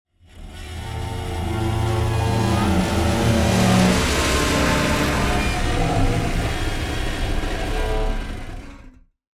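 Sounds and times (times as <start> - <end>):
dissonant bow stroke on strings and wires: 0.3 - 9.0.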